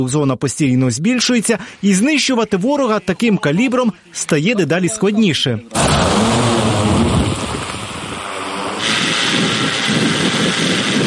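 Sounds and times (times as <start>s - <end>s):
speech: 0.0s - 6.4s
heavy multirotor drone climbing and maneuvering: 5.7s - 11.0s.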